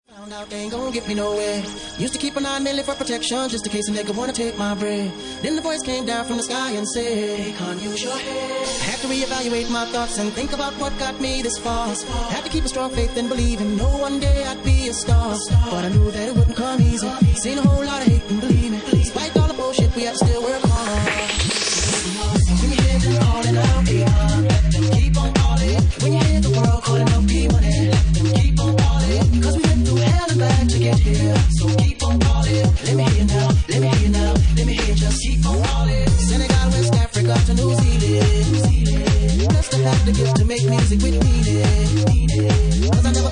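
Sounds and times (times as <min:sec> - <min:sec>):
bassline music mix: 0:00.2 - 0:43.3.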